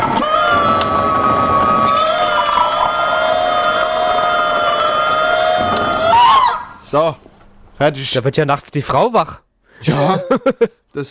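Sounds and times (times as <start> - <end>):
water hissing: 0.0 - 6.8
novelty water tap making a squealing chicken-like cry: 2.0 - 6.6
speech: 6.9 - 11.0
laughter: 9.9 - 10.8.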